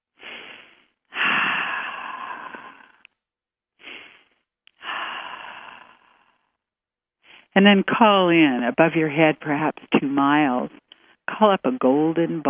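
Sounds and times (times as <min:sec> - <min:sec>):
slow deep breaths during a guided relaxation: 0:00.1 - 0:03.1, 0:03.8 - 0:06.6
speech: 0:07.6 - 0:12.4.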